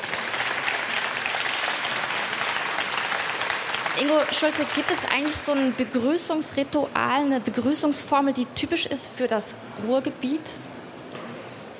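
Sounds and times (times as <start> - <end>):
indoor audience applause at book fair: 0.0 - 5.9
speech: 4.0 - 10.7.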